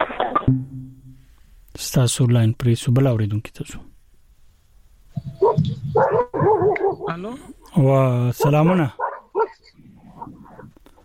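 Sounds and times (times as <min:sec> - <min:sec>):
speech: 0:00.5 - 0:00.7, 0:01.8 - 0:03.9, 0:07.1 - 0:09.0
dog barking: 0:05.3 - 0:07.2, 0:08.4 - 0:10.7.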